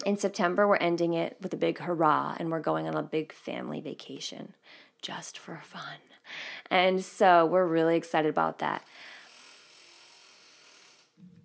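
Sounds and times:
speech: 0:00.1 - 0:09.1
door creaking open in the wind: 0:09.3 - 0:11.4.

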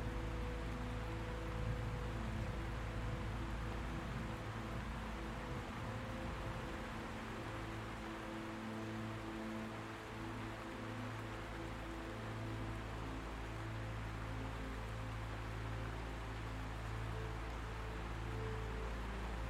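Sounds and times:
constant low rumble: 0:00.0 - 0:08.3
gentle music of soft sustained low tones and slow drifting chords: 0:00.0 - 0:19.4
steady hiss: 0:00.0 - 0:19.4.

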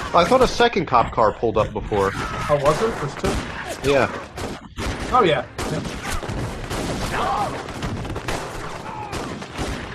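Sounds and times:
speech: 0:00.1 - 0:06.0
rapid gunfire in a video game: 0:02.1 - 0:09.9.

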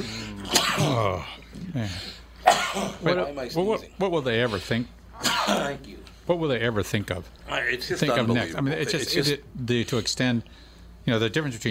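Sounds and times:
person sneezing: 0:00.2 - 0:01.4, 0:05.2 - 0:05.8
speech: 0:00.8 - 0:11.6.

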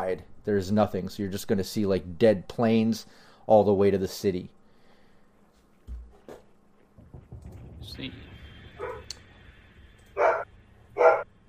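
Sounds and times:
speech: 0:00.1 - 0:04.6, 0:07.9 - 0:08.2
dog barking: 0:08.8 - 0:09.1, 0:10.2 - 0:11.3.

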